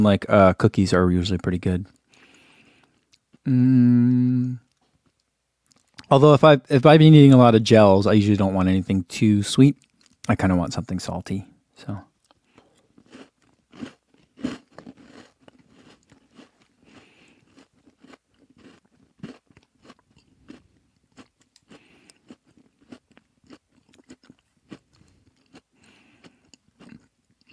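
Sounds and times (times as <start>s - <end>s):
speech: 0.0s - 2.0s, 3.4s - 4.6s, 6.1s - 12.1s
candy being chewed: 4.6s - 6.2s, 9.7s - 10.3s, 12.1s - 27.5s.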